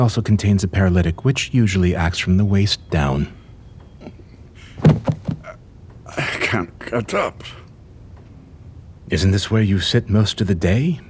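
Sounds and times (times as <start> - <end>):
speech: 0.0 - 3.4, 6.1 - 7.6, 9.1 - 11.0
faint rattle: 2.9 - 11.0
telephone being handled and shifted: 4.8 - 5.6.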